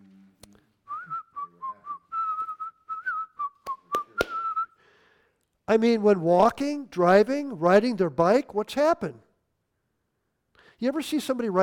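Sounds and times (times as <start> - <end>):
person whistling a simple tune: 0.9 - 4.8
speech: 5.7 - 9.2, 10.8 - 11.6.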